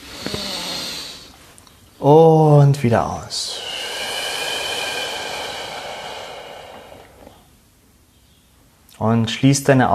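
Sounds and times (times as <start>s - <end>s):
deep inhale through the nose: 0.0s - 1.4s, 3.5s - 7.6s
speech: 2.0s - 3.5s, 9.0s - 9.9s.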